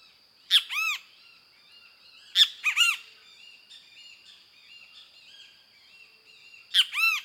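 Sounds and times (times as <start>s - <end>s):
kiskadee calling perched on a dead limb: 0.0s - 1.4s, 2.1s - 3.1s, 6.6s - 7.2s.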